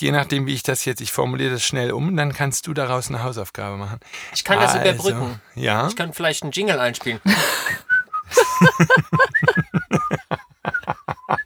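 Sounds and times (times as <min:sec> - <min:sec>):
speech: 0:00.0 - 0:07.9, 0:08.6 - 0:09.6
laughter: 0:04.4 - 0:11.4
person whistling a short bouncy tune: 0:07.3 - 0:11.4.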